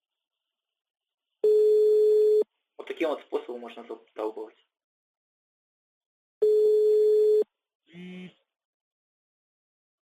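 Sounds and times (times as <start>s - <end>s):
telephone call tone after dialing a number: 1.4s - 2.4s, 6.4s - 7.5s
speech: 3.0s - 4.7s.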